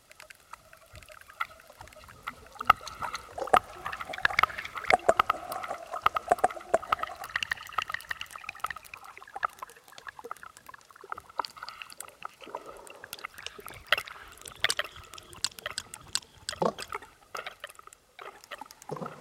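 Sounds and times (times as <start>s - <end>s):
underwater crackle of clicks and snaps along the Toulon coast: 0.0s - 19.2s.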